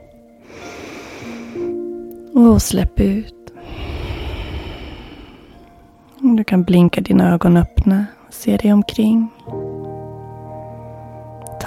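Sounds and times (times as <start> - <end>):
soft sustained musical tones: 0.0 - 11.6
long deep breath drawn in through the nose: 0.4 - 1.8, 3.6 - 6.0
speech: 2.4 - 3.4, 6.4 - 9.8.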